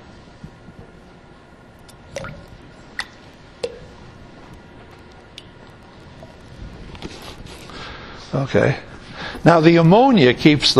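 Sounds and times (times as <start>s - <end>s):
quiet hiss of room noise: 0.0s - 10.7s
thick liquid latex pouring into a container of water: 1.9s - 3.8s
speech: 8.3s - 10.7s.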